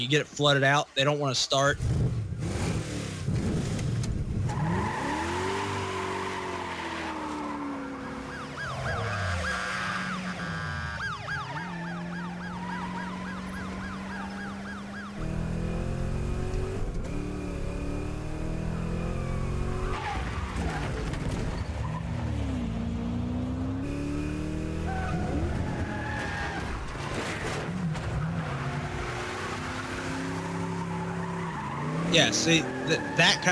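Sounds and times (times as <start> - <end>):
speech: 0.0 - 2.0, 32.4 - 33.5
car engines roaring and revving in a car chase: 1.7 - 33.5
tires squealing and skidding through turns: 4.4 - 15.2, 19.7 - 22.5, 24.6 - 33.5
wailing sirens: 4.5 - 21.1, 23.7 - 33.5.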